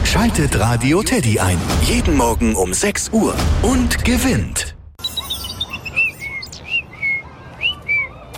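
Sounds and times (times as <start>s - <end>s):
speech: 0.1s - 4.7s
European robin singing: 5.0s - 8.1s.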